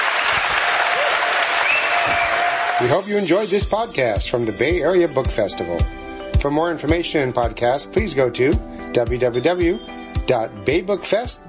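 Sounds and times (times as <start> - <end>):
audience applauding at a book festival talk: 0.0 - 2.9
speech: 2.8 - 11.4.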